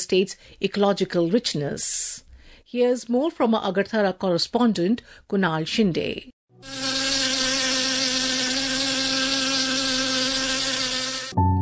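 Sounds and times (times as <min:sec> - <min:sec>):
speech: 0:00.0 - 0:07.0
honeybees buzzing: 0:06.6 - 0:11.4.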